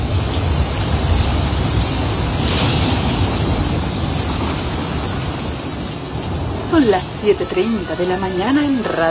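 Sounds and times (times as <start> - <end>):
faint low rumble of thunder: 0.0 - 9.0
heavy rain pouring down: 0.0 - 9.0
speech: 6.8 - 9.0.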